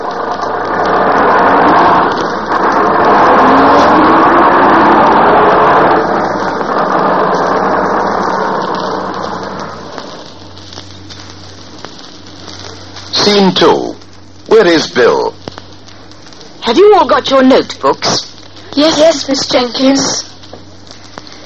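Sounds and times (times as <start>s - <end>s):
bus engine idling and pulling away: 0.0s - 10.3s
speech: 13.3s - 14.0s, 14.6s - 15.1s, 16.7s - 20.3s.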